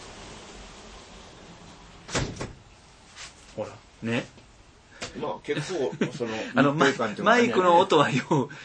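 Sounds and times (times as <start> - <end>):
steady hiss of heavy rain: 0.0 - 7.5
balcony door being shut: 2.1 - 2.7
speech: 3.6 - 4.4, 5.2 - 8.6
laughter: 5.5 - 8.5.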